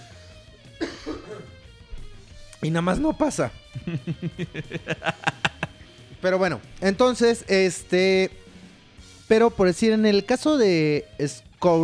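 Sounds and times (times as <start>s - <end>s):
person coughing from a peanut in throat: 0.8s - 1.6s
throat clearing: 0.8s - 1.6s
speech: 2.6s - 5.4s, 6.2s - 8.4s, 9.3s - 11.8s
laughter: 3.7s - 5.8s.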